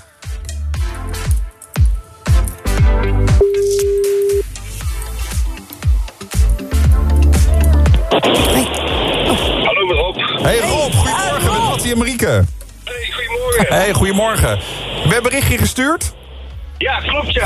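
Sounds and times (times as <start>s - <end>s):
busy musical backing with punchy drum hits: 0.0s - 13.9s
outgoing telephone call ringing tone: 3.4s - 4.4s
burst of hissing noise: 4.5s - 15.6s
speech: 13.6s - 16.2s, 16.8s - 17.4s.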